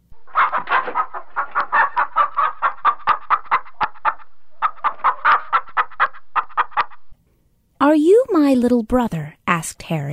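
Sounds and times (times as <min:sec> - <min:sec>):
chicken clucking: 0:00.1 - 0:07.2
speech: 0:08.5 - 0:10.1.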